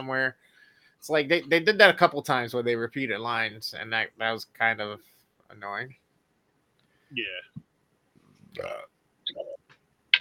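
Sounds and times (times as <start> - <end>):
speech: 0.0 - 6.0, 7.1 - 7.7, 8.5 - 9.6
mouth noises: 8.3 - 10.1
person burping: 8.5 - 9.6.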